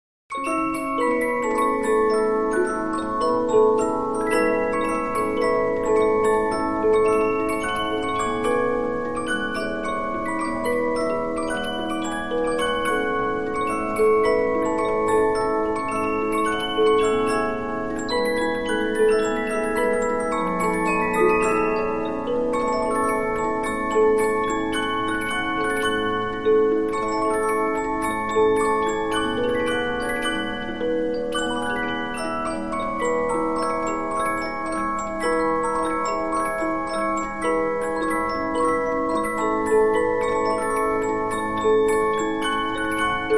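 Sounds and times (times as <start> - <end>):
15-inch Polyphon music box playing: 0.3 - 43.3.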